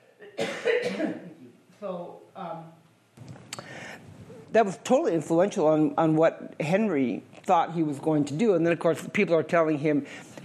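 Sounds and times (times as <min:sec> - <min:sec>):
harsh cough: 0:00.0 - 0:01.4
speech: 0:01.8 - 0:03.3, 0:04.5 - 0:10.4.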